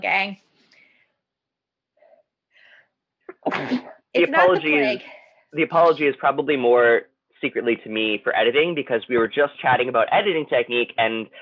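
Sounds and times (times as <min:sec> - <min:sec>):
speech: 0:00.0 - 0:00.5, 0:03.4 - 0:11.3
single loud sneeze: 0:03.3 - 0:04.2.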